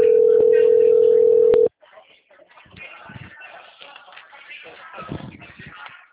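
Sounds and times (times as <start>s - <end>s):
telephone ringback tone while calling someone: 0.0s - 1.7s.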